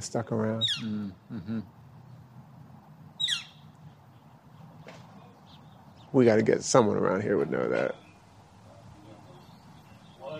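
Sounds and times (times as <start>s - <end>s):
speech: 0.0s - 1.8s, 6.1s - 8.0s
sharp high bird call outdoors: 3.2s - 3.7s.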